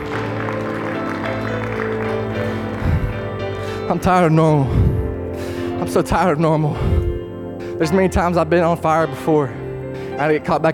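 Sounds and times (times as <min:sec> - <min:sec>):
church audience clapping in praise: 0:00.0 - 0:03.4
organ-like music chords: 0:00.0 - 0:10.7
speech: 0:03.9 - 0:05.0, 0:05.8 - 0:07.1, 0:07.8 - 0:09.6, 0:10.2 - 0:10.7.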